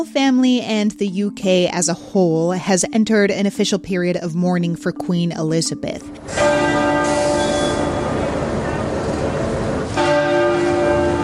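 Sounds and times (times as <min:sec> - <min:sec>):
speech: 0:00.0 - 0:06.7
church bells ringing: 0:06.1 - 0:11.2.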